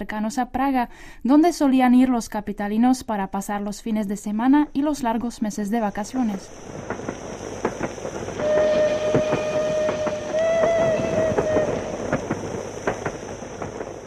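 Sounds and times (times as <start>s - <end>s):
speech: 0.0s - 7.2s
train wheels clickety-clack north of Prague: 6.2s - 14.0s
train whistle north of Prague: 8.4s - 13.0s.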